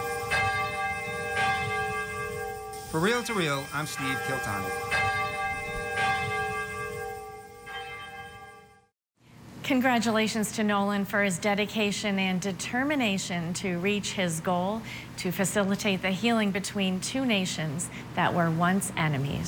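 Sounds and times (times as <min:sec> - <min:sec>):
deep cathedral bell tolling: 0:00.0 - 0:08.9
speech: 0:02.9 - 0:05.0, 0:09.7 - 0:19.4.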